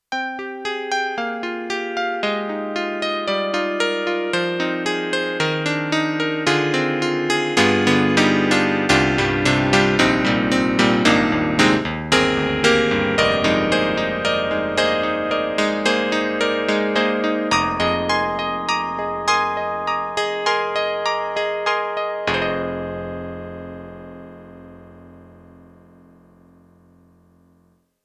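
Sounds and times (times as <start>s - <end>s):
synthesized electric grand piano on stage: 0.1s - 27.8s.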